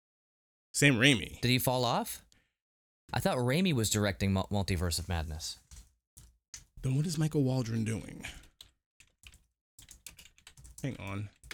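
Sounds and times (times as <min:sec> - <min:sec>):
speech: 0:00.8 - 0:02.2, 0:03.1 - 0:05.6, 0:06.8 - 0:08.4, 0:10.8 - 0:11.4
two people typing on keyboards: 0:08.3 - 0:11.5.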